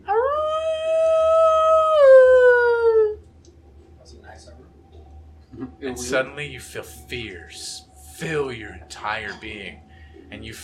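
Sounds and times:
single wolf howling in a forest: 0.0s - 3.2s
faint low hum: 0.0s - 10.6s
speech: 6.0s - 10.6s.

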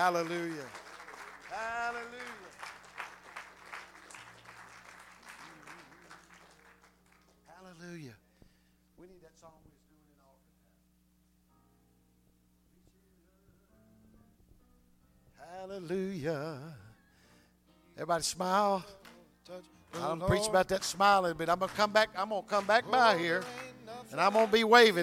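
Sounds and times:
speech: 0.0s - 0.9s, 1.6s - 2.4s, 7.7s - 8.2s, 15.4s - 16.8s, 18.0s - 25.0s
congregation clapping hands: 0.0s - 7.9s, 19.0s - 19.3s, 19.9s - 25.0s.

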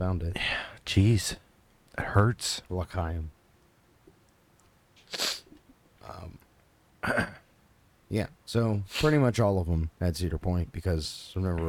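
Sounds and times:
speech: 0.0s - 1.4s, 2.0s - 3.4s, 7.0s - 7.4s, 8.1s - 11.6s
person sneezing: 5.1s - 5.6s.

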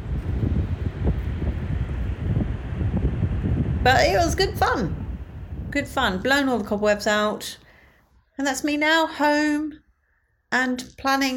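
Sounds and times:
faint surf: 0.0s - 6.8s
wind buffeting a microphone on a beach: 0.0s - 7.5s
speech: 3.9s - 5.0s, 5.7s - 7.6s, 8.4s - 9.8s, 10.5s - 11.3s.

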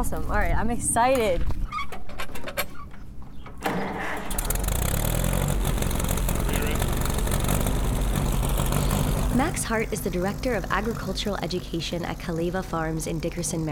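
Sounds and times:
speech: 0.0s - 1.6s, 9.4s - 13.7s
old 1940s tractor engine starting up and idling: 4.1s - 13.5s.

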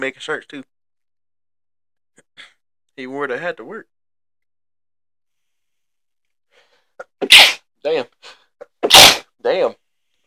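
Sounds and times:
speech: 0.0s - 0.8s, 2.2s - 3.9s, 7.2s - 9.8s
person sneezing: 7.0s - 7.7s, 8.7s - 9.3s.

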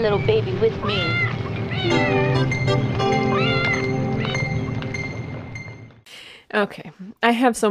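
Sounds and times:
speech: 0.0s - 3.7s, 6.5s - 7.6s
steady hum: 0.0s - 6.0s
cat meowing in rising drawn-out cries: 0.8s - 4.7s.

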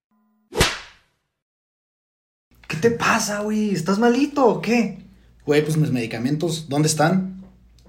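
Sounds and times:
slap across the face: 0.5s - 1.1s
speech: 2.8s - 7.3s.

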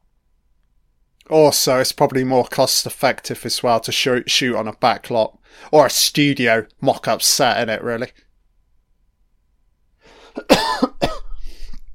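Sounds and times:
speech: 1.3s - 8.2s
person coughing: 10.2s - 11.8s
throat clearing: 10.4s - 11.3s.

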